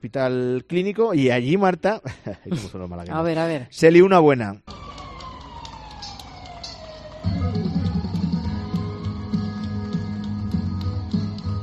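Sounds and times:
speech: 0:00.0 - 0:04.8
fire truck siren wailing in front of a hospital in Málaga Spain: 0:04.7 - 0:11.6
rhythmic thumps: 0:04.7 - 0:11.6
song over city bus loudspeakers: 0:04.7 - 0:11.6.

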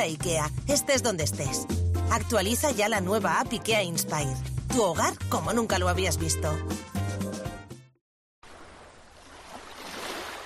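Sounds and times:
speech: 0:00.0 - 0:06.9
sea waves: 0:08.4 - 0:10.4.

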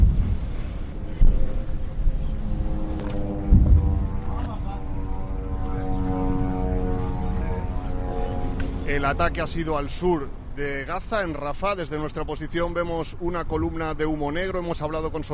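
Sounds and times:
military aircraft engine drone overhead: 0:00.0 - 0:15.3
speech: 0:09.0 - 0:15.3.

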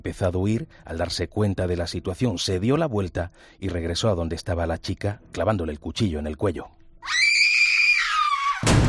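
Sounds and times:
speech: 0:00.0 - 0:07.2
woman screaming: 0:07.0 - 0:08.7.

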